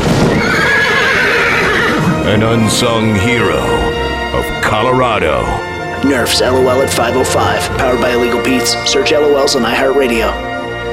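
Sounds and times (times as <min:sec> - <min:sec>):
horse neighing with a wavering high whinny: 0:00.3 - 0:04.3
dense rumbling low backdrop possibly including hooves: 0:02.0 - 0:10.9
speech: 0:02.3 - 0:10.5.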